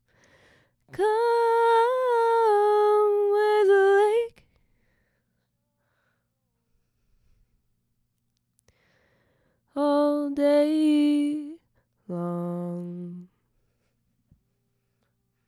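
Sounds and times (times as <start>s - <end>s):
vocal harmony: 0.9s - 4.4s, 9.8s - 13.3s.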